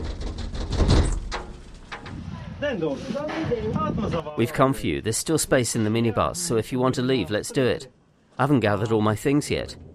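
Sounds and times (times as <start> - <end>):
heavy banging on a door: 0.0 - 2.2
speech: 2.6 - 9.9.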